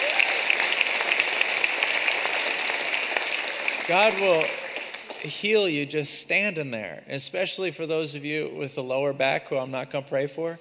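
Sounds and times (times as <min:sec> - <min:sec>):
large audience applauding: 0:00.0 - 0:05.8
speech: 0:03.9 - 0:04.6, 0:05.2 - 0:10.6.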